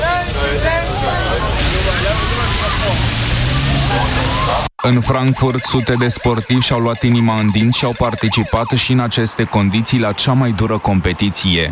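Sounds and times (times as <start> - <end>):
crowd of voices chattering and calling out: 0.0 - 8.8
high-pressure water cannon spraying water on people: 1.1 - 8.8
speech: 4.8 - 11.6.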